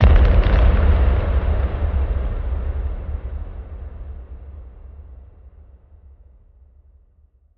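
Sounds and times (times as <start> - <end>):
crumbling boom: 0.0 - 6.0.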